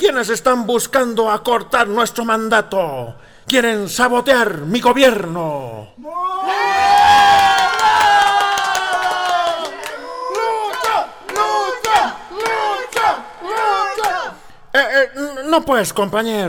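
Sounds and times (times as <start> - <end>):
speech: 0.0 - 6.7, 14.8 - 16.4
crowd cheering and shouting: 6.1 - 14.4.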